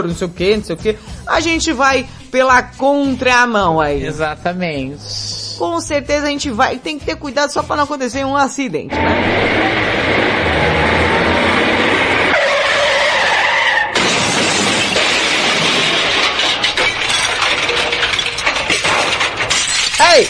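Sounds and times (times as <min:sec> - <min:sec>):
speech: 0:00.0 - 0:10.8
glass debris crashing and scraping: 0:08.9 - 0:20.2
glass shattering: 0:13.4 - 0:20.2.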